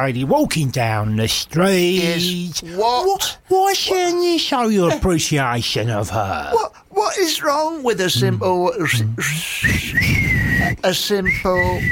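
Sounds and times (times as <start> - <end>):
speech: 0.0 - 11.8
person whistling loudly with upward swoops: 9.2 - 11.8.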